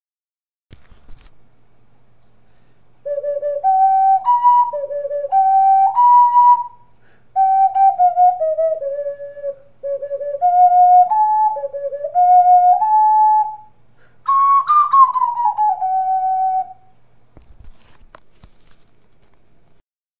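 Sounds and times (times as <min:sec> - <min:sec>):
ocarina melody: 0:03.0 - 0:17.0.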